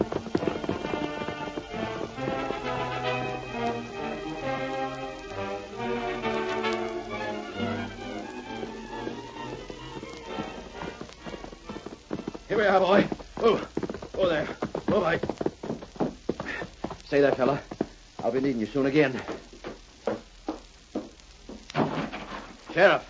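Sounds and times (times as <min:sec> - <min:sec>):
dense musical backdrop: 0:00.0 - 0:15.2
horse hooves galloping: 0:00.0 - 0:23.0
speech: 0:12.8 - 0:13.6, 0:17.1 - 0:17.7, 0:18.3 - 0:19.3, 0:22.8 - 0:23.0.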